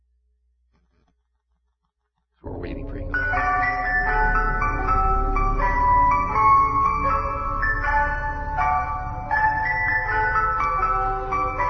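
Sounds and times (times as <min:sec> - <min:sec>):
tinkling ice cream truck jingle: 0:03.1 - 0:11.6.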